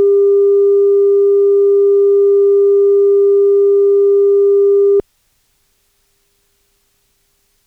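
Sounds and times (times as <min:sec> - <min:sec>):
315Hz tone: 0:00.0 - 0:05.0.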